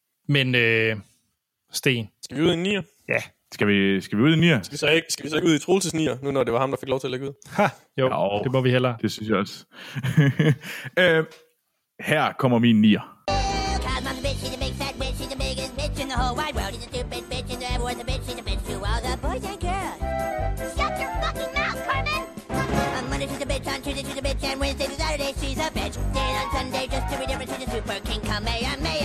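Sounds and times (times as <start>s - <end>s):
speech: 0.3s - 1.1s, 1.7s - 11.4s, 12.0s - 13.1s
laughter: 10.0s - 10.8s
lively upbeat show tune from an animated musical with melodic singing: 13.3s - 29.0s
full orchestral backing: 20.0s - 23.5s, 26.1s - 28.0s.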